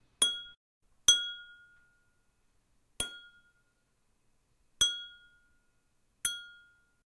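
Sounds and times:
wine glass being hit at a higher pitch: 0.2s - 2.2s, 3.0s - 3.7s, 4.8s - 5.6s, 6.2s - 7.0s.

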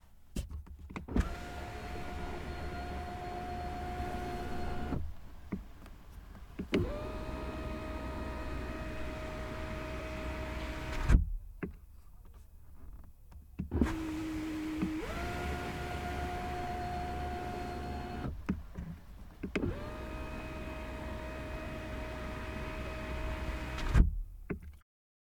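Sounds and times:
Volvo XC60 window opening and closing: 1.0s - 5.7s, 6.4s - 11.4s, 13.6s - 24.2s.

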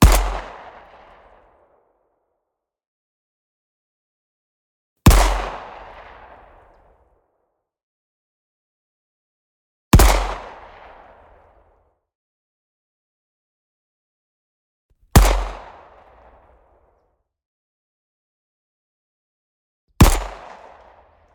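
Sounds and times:
designed Luger pistol shot: 0.0s - 0.6s, 5.1s - 6.1s, 10.0s - 10.8s, 15.2s - 15.8s, 20.0s - 20.8s.

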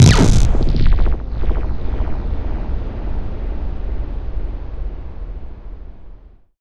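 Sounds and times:
modern cinematic impact: 0.0s - 4.5s.

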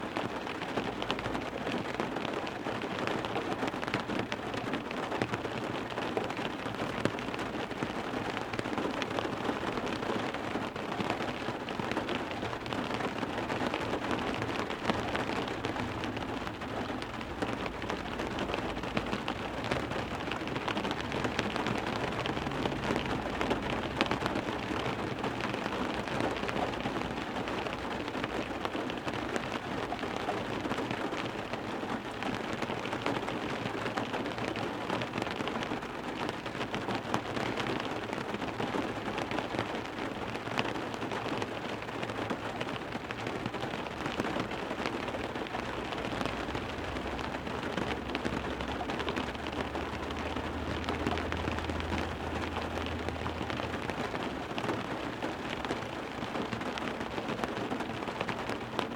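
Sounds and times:
heavy rain drops on a car window: 0.0s - 58.9s.

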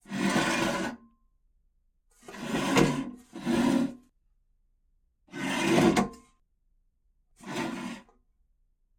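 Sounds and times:
fiberglass chair with metal legs sliding on tile: 0.0s - 1.0s, 2.2s - 4.1s, 5.3s - 6.1s, 7.4s - 8.1s.

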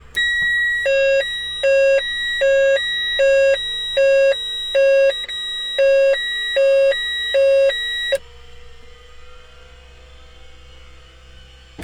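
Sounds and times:
Cessna 208 Caravan fire detection alarm: 0.0s - 8.2s.

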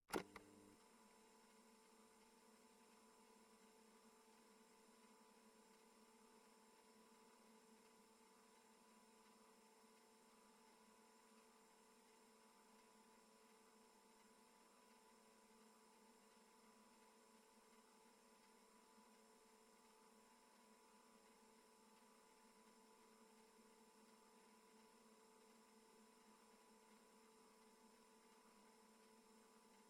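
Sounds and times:
cassette player play button clicks: 0.1s - 0.5s
cassette player motor running, interior perspective: 0.1s - 29.8s.

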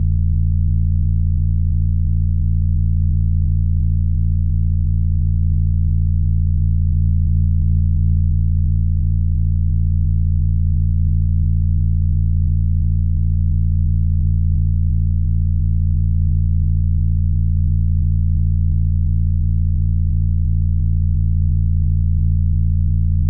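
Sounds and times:
no-input feedback loop low deep pulsating clean tone: 0.0s - 23.2s.

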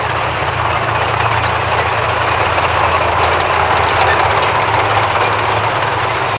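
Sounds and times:
tank treads rolling: 0.0s - 6.3s.

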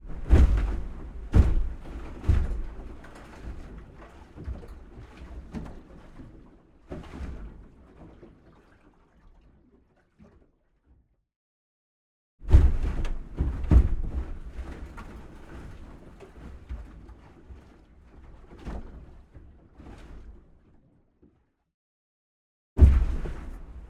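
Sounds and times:
medium waves impacting an aluminium boat hull: 0.0s - 9.3s, 12.5s - 20.8s, 22.8s - 23.8s.

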